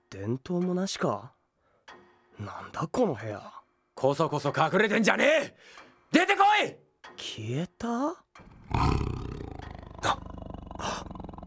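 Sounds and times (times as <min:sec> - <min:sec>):
speech: 0:00.1 - 0:01.4, 0:02.4 - 0:09.1
tiger growling and snarling: 0:08.5 - 0:11.4.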